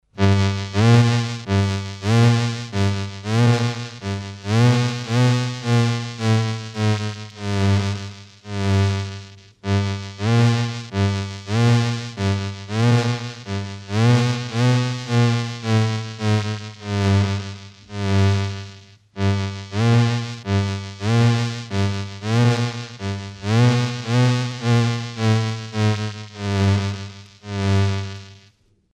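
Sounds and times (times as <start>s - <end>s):
electronic ascending and descending sound pattern: 0.2s - 28.4s.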